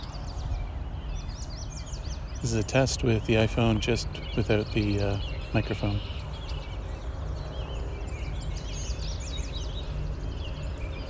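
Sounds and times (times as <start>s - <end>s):
Tennessee warblers and red-winged blackbirds singing outdoors: 0.0s - 11.0s
speech: 2.4s - 6.2s.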